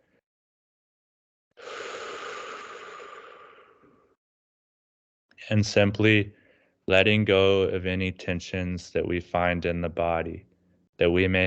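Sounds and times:
deep breath during guided bodily tranquility practice: 1.6s - 4.2s, 6.3s - 6.8s
speech: 5.4s - 11.4s.

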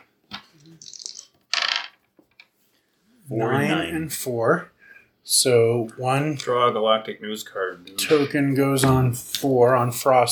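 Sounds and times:
dice clattering across a tabletop during a tabletop game: 0.8s - 2.1s
speech: 3.3s - 10.3s.

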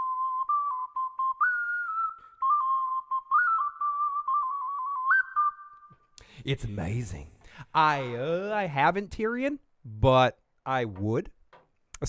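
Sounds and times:
person whistling a simple melody: 0.0s - 6.2s
speech: 6.4s - 11.4s.

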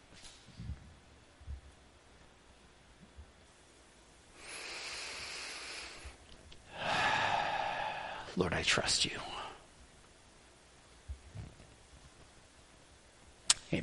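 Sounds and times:
person taking a slow deep breath: 4.4s - 8.4s
speech: 8.4s - 9.4s.

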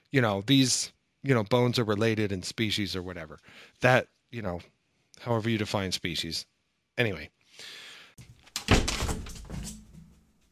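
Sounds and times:
speech: 0.1s - 8.3s
object being knocked over: 8.6s - 10.2s.

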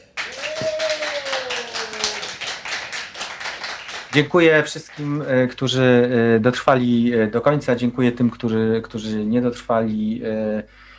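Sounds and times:
crowd applause: 0.0s - 7.2s
speech: 4.2s - 10.9s.

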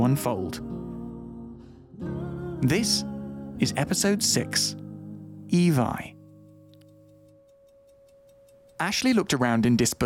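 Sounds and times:
speech: 0.1s - 0.8s, 2.0s - 4.8s, 5.5s - 6.2s, 8.8s - 10.0s
small clock on a dresser ticking: 6.2s - 9.6s.

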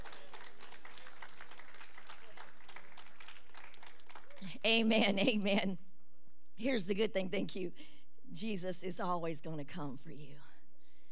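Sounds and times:
crowd applauding: 0.0s - 4.6s
speech: 4.4s - 5.8s, 6.6s - 10.5s.

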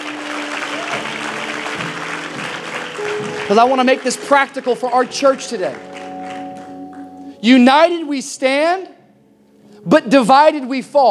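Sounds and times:
church congregation clapping together: 0.0s - 7.2s
speech: 3.5s - 5.9s, 7.4s - 9.0s, 9.8s - 11.0s.

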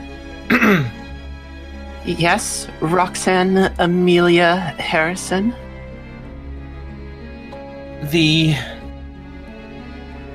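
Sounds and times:
throat clearing: 0.5s - 1.0s
speech: 0.7s - 1.0s, 2.0s - 5.6s, 8.0s - 8.7s.

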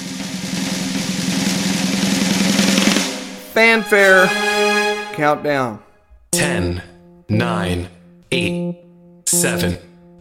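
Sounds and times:
drum roll: 0.0s - 5.2s
speech: 3.6s - 4.5s, 5.2s - 9.9s.

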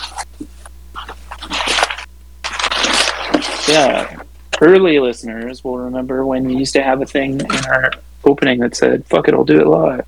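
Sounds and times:
scissors cutting open plastic packaging: 1.4s - 4.2s
speech: 3.7s - 10.0s.

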